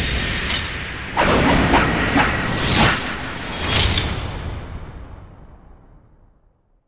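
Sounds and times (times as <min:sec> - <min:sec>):
fast movement whoosh: 0:00.2 - 0:04.4.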